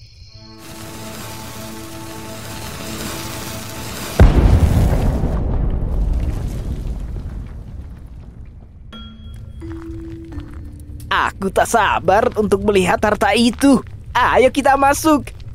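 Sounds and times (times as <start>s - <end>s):
deep rumbling and crumbling debris: 0.6s - 15.5s
explosion blasting open a cave entrance: 3.0s - 9.0s
speech: 11.2s - 15.4s.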